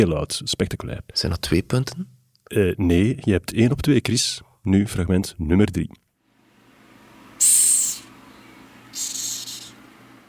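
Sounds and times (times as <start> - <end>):
speech: 0.0 - 6.0
hissing cockroach hissing: 7.4 - 8.1, 8.9 - 9.8.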